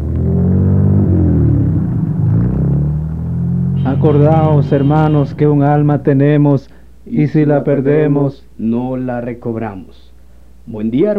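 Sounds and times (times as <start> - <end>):
car driving out of a village with deep engine drone: 0.0 - 8.6
speech: 4.0 - 11.1.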